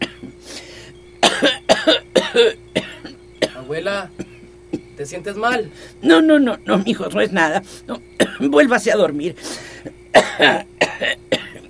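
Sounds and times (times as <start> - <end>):
grandmother coughing in dry raspy bursts: 0.0 - 0.4, 1.2 - 5.0, 8.2 - 8.6, 9.8 - 11.6
speech: 2.4 - 2.6, 3.8 - 4.2, 5.0 - 11.3.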